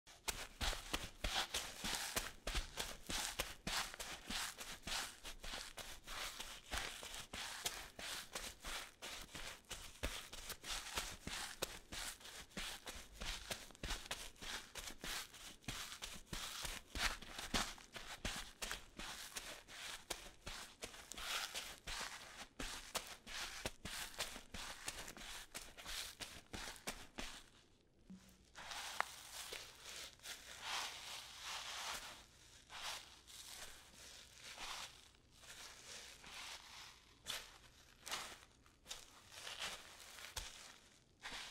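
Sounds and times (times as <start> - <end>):
barefoot footsteps on sand: 0.1 - 27.5, 28.1 - 41.4
boot footsteps on sand: 0.1 - 27.5, 28.1 - 32.1, 37.3 - 41.4.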